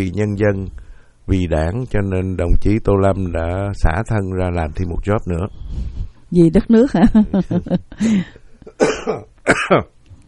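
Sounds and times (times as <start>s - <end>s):
speech: 0.0s - 9.9s
laughter: 6.8s - 8.4s
harsh throaty coughs: 8.6s - 9.9s.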